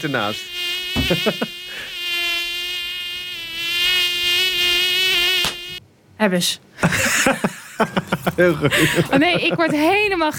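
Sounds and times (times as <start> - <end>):
speech: 0.0 - 1.6, 6.2 - 10.3
mosquito buzzing: 0.0 - 5.8
laughter: 1.0 - 1.8, 6.8 - 10.3.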